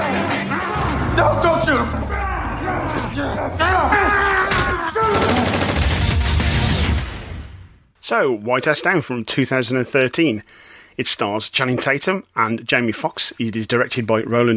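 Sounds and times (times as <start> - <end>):
people shouting in an action film scene: 0.0 - 5.8
speech: 1.7 - 2.2, 8.1 - 14.5
gunfire bursts in an action film scene: 5.0 - 6.6.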